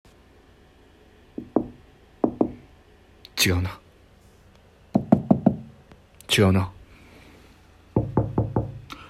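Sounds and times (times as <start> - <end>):
sharp knocks on a door: 1.4 - 2.6, 4.9 - 5.8, 8.0 - 8.8
speech: 3.4 - 3.8, 6.3 - 6.8.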